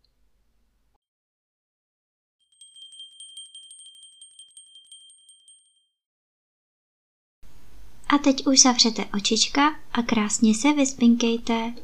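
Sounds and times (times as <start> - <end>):
small bell hanging on a door ringing: 2.4 - 6.0
speech: 8.1 - 11.8.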